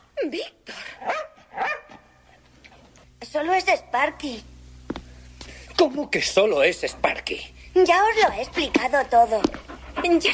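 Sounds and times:
speech: 0.3s - 1.2s, 3.4s - 4.5s, 5.8s - 10.3s
dog yipping: 1.0s - 2.0s
dog barking: 1.0s - 2.2s.

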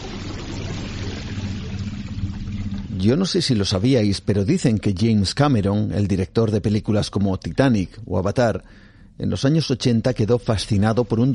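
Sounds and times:
deep underwater ocean water noise: 0.0s - 3.6s
low droning rumble underwater: 0.5s - 4.9s
speech: 3.0s - 11.3s.

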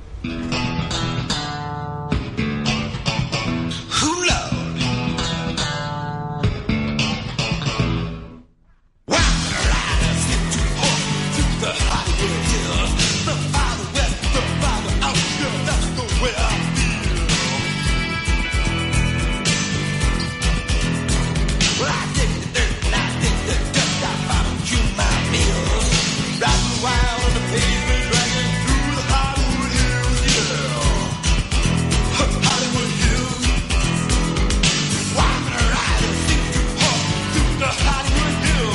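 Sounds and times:
loud rock song with driving drums and dense guitars: 0.0s - 8.4s, 9.1s - 38.7s.

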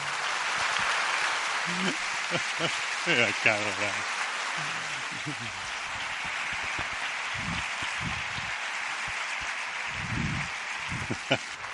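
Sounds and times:
crowd applauding for speaker entering stage: 0.0s - 11.7s
voices calling out and cheering: 0.0s - 11.7s
laughter: 1.7s - 4.0s, 4.6s - 8.2s, 10.9s - 11.7s
speech: 1.7s - 5.8s.

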